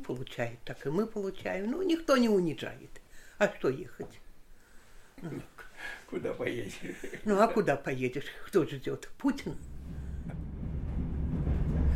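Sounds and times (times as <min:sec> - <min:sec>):
speech: 0:00.0 - 0:04.2, 0:05.2 - 0:09.7
moving train rumble heard from inside the carriage: 0:09.6 - 0:11.9.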